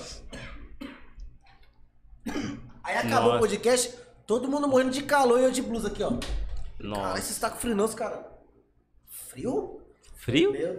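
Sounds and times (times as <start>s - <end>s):
person clearing throat: 0.1s - 1.2s, 2.2s - 2.8s
person coughing: 0.1s - 1.2s, 2.2s - 2.8s
speech: 2.9s - 8.3s, 9.3s - 10.7s.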